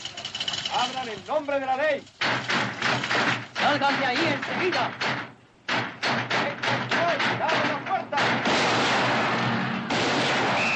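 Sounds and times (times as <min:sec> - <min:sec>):
speech: 0:00.8 - 0:02.6, 0:03.2 - 0:05.2
gunshots fired in a saloon during a Western shootout: 0:02.2 - 0:10.7.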